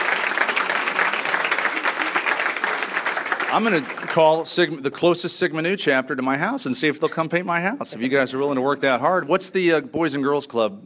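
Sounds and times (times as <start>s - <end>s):
audience applause: 0.0s - 4.7s
speech: 3.5s - 10.8s.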